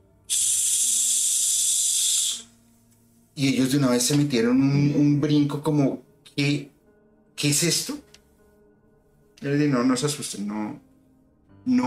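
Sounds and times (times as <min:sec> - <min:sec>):
unplugged steam iron hissing in a walk-in closet: 0:00.3 - 0:02.5
speech: 0:03.4 - 0:06.7, 0:07.4 - 0:08.1, 0:09.4 - 0:10.9, 0:11.6 - 0:11.8.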